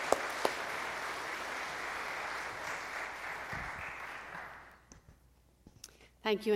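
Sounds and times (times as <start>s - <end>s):
audience applause welcoming a speaker: 0.0s - 4.9s
speech: 6.3s - 6.5s.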